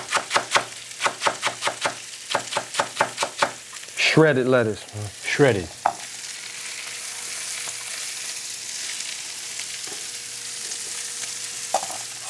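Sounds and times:
onions sizzling on a hot flat-top griddle: 0:00.0 - 0:12.2
speech: 0:04.2 - 0:05.8
scraping and clinks as onions are pushed around on griddle: 0:11.7 - 0:12.2.

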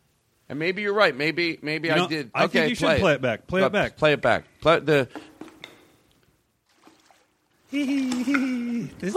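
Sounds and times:
speech: 0:00.5 - 0:05.3, 0:07.7 - 0:09.1
toilet water splashing in a toilet bowl: 0:06.6 - 0:08.9
toilet water trickling: 0:06.6 - 0:09.1
laughter: 0:07.7 - 0:09.1.

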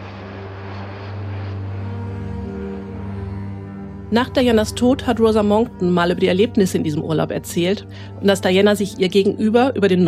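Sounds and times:
private jet engines droning while flying to Athens: 0:00.0 - 0:06.5
speech: 0:04.1 - 0:10.0.

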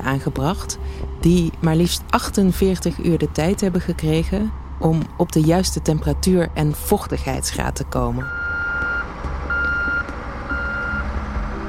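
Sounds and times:
constant low engine rumble: 0:00.0 - 0:11.6
speech: 0:00.1 - 0:08.4
truck reversing beeps: 0:08.2 - 0:11.6.

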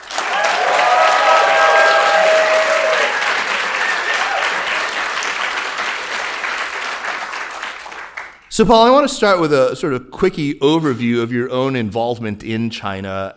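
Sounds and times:
audience applause: 0:00.0 - 0:08.5
whistles and cheers: 0:00.1 - 0:05.0
speech: 0:08.6 - 0:13.3.

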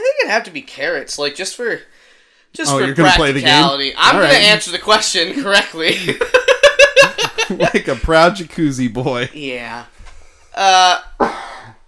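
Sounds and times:
speech: 0:00.3 - 0:06.4, 0:07.5 - 0:09.9, 0:10.6 - 0:11.4
laughter: 0:05.3 - 0:08.4
person coughing: 0:11.2 - 0:11.8.

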